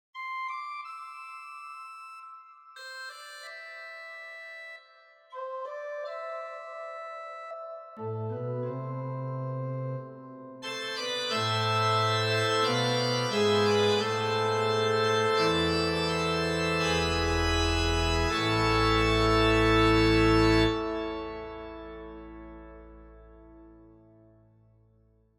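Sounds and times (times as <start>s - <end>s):
organ song: 5.6s - 23.9s.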